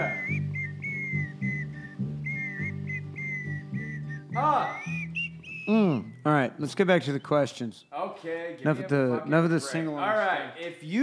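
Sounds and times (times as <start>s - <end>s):
background music with a low rhythmic bass: 0.0s - 5.3s
melodic whistling: 0.0s - 7.4s
speech: 5.7s - 11.0s.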